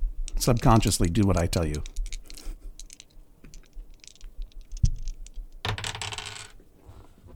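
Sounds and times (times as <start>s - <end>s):
speech: 0.4s - 2.0s
pair of dice clattering and tumbling across a hard surface: 1.6s - 6.6s.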